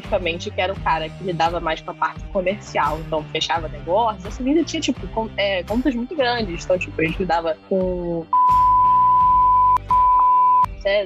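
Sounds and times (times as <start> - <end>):
speech: 0.1 - 8.6, 10.8 - 11.0
censor bleep tone covering a name: 8.3 - 10.7.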